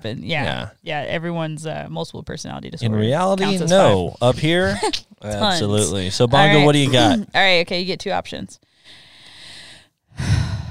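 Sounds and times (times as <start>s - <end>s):
speech: 0.0s - 9.0s, 10.2s - 10.5s
heavy close-miked breathing into microphone, ASMR style: 8.7s - 10.6s.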